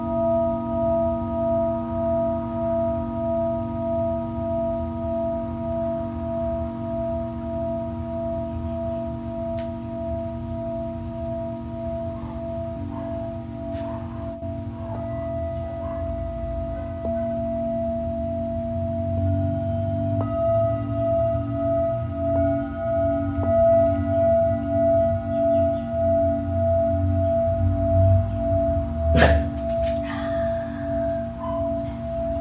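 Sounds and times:
Tibetan singing bowl ringing: 0.0 - 32.3
brief sharp knock or strike: 29.1 - 29.7.

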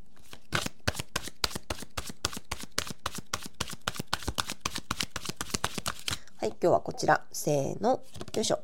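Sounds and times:
tarot cards being shuffled and drawn: 0.2 - 6.2, 8.1 - 8.5
speech: 6.4 - 8.6.

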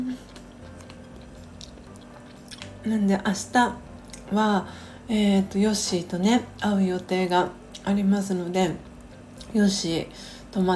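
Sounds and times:
chewing extra-sweet Shinshu corn on the cob: 0.0 - 2.7
speech: 2.8 - 8.9, 9.5 - 10.7.

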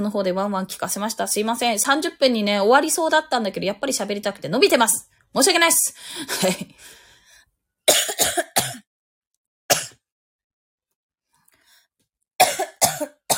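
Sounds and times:
speech: 0.0 - 7.0
person coughing and choking: 7.9 - 8.9, 9.7 - 10.0, 12.4 - 13.3.

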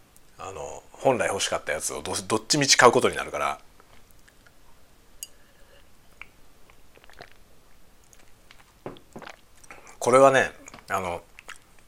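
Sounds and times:
speech: 0.4 - 3.7, 10.1 - 11.3
wet chewing of spicy instant cup noodles: 6.1 - 10.0, 10.6 - 11.8
slurping of extremely spicy instant cup noodles: 6.9 - 7.5.

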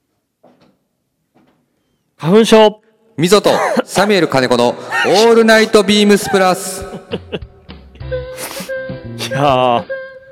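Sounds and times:
speech: 2.2 - 7.5, 9.3 - 10.0
person coughing: 3.4 - 4.1
throat clearing: 3.5 - 3.9
laughter: 6.0 - 7.6.

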